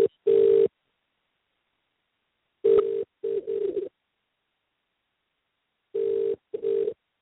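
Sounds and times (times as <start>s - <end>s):
outgoing call ringing tone: 0.0s - 0.7s, 2.6s - 3.9s, 6.0s - 7.0s.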